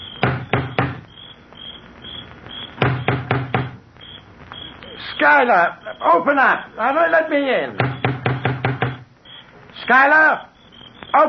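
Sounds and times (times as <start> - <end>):
faint steady high chirring: 0.0 - 2.8, 4.0 - 11.2
heavy door knocker striking front door: 0.2 - 1.0, 2.8 - 3.8, 7.8 - 9.0
speech: 5.2 - 7.9, 9.9 - 10.5.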